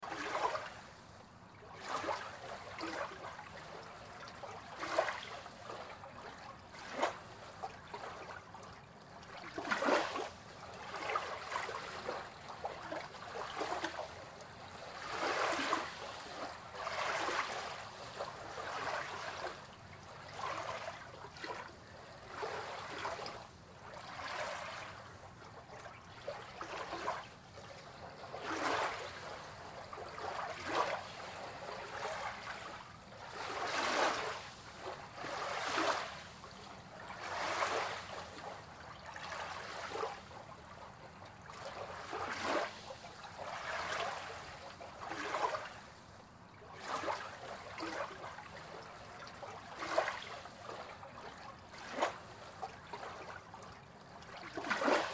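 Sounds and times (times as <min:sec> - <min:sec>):
small ocean waves under a water pier: 0:00.0 - 0:55.1.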